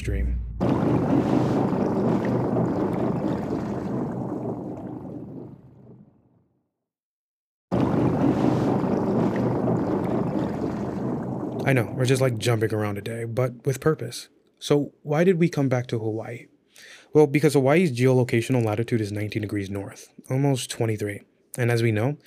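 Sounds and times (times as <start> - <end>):
boat churning across the water in Hawaii: 0.6 - 6.0, 7.7 - 12.4
speech: 11.7 - 22.2.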